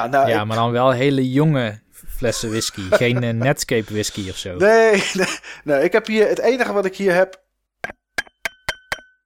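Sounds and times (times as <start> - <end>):
speech: 0.0 - 8.0
laughter: 2.3 - 5.6
glass of water clinking: 7.8 - 9.2.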